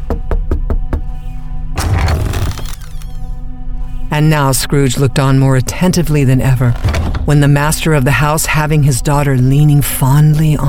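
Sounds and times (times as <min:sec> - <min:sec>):
knocking on a door: 0:00.0 - 0:01.2
low tonal hum: 0:00.0 - 0:10.6
speech: 0:04.2 - 0:10.6.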